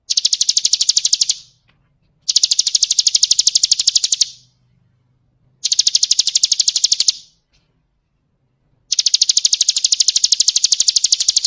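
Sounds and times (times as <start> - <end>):
bird trilling: 0.0 - 1.6, 2.3 - 4.6, 5.6 - 7.4, 8.9 - 11.4.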